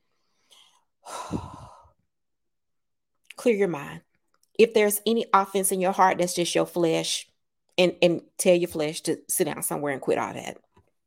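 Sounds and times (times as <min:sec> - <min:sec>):
deep breathing with sigh-like exhale: 0:00.1 - 0:02.0
speech: 0:03.4 - 0:10.6.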